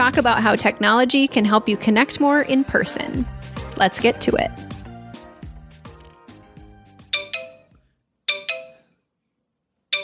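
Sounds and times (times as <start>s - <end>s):
speech: 0.0s - 4.7s
chiming text message notification alerts: 7.1s - 8.9s
melodic phone ringtone: 7.1s - 8.9s.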